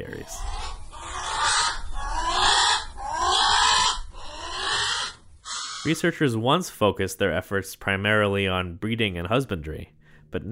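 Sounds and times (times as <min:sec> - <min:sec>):
speech: 0:00.0 - 0:00.5, 0:05.8 - 0:10.5
Hawaiian crow alala giving raspy calls: 0:00.2 - 0:06.0.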